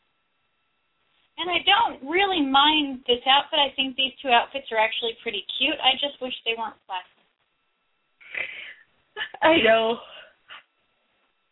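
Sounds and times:
speech: 0:01.4 - 0:07.1, 0:09.2 - 0:10.1
breathy inhale: 0:08.2 - 0:08.9.

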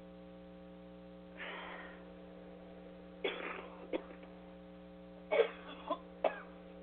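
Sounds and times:
steady electrical hum: 0:00.0 - 0:06.8
soft breath: 0:01.4 - 0:02.1
person coughing: 0:03.2 - 0:04.2, 0:05.3 - 0:06.5.

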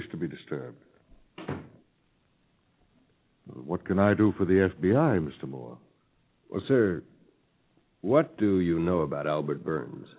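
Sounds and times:
speech: 0:00.2 - 0:00.9, 0:03.9 - 0:05.9, 0:06.5 - 0:07.1, 0:08.0 - 0:10.1
door thudding shut: 0:01.4 - 0:01.8.

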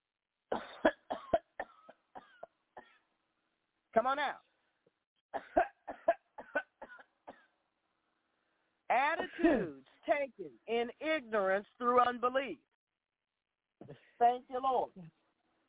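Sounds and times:
person coughing harshly: 0:00.5 - 0:03.0, 0:05.4 - 0:07.5
speech: 0:04.0 - 0:04.5, 0:08.9 - 0:12.7, 0:13.9 - 0:15.6.

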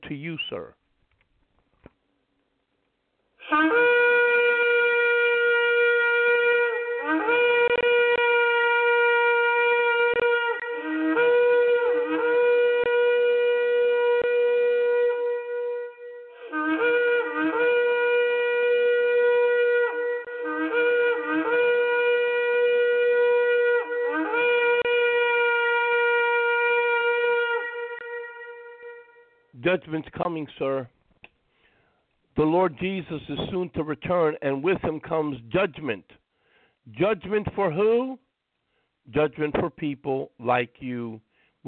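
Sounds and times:
speech: 0:00.1 - 0:00.8, 0:03.5 - 0:04.0, 0:29.7 - 0:31.0, 0:32.4 - 0:36.2, 0:37.0 - 0:38.2, 0:39.1 - 0:41.6
shofar ram's horn trumpet being blown in long brassy blasts: 0:03.4 - 0:29.8.

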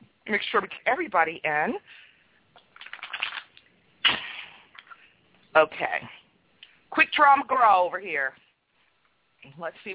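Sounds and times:
speech: 0:00.3 - 0:02.0, 0:05.6 - 0:06.2, 0:06.9 - 0:08.4, 0:09.4 - 0:09.9
deck of tarot cards being shuffled: 0:02.6 - 0:03.6.

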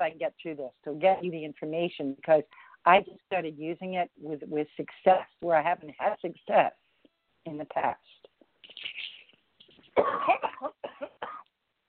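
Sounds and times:
speech: 0:00.0 - 0:06.8, 0:07.4 - 0:08.2, 0:10.0 - 0:10.8
harsh coughing fit from person with months-long cough: 0:10.0 - 0:11.5.

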